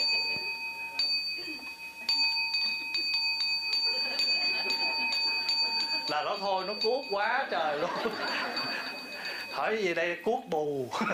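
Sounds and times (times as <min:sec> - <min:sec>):
bell struck and ringing: 0:00.0 - 0:10.2
laughter: 0:03.8 - 0:06.1, 0:07.4 - 0:09.3, 0:10.9 - 0:11.1
speech: 0:06.2 - 0:08.8, 0:09.6 - 0:11.1.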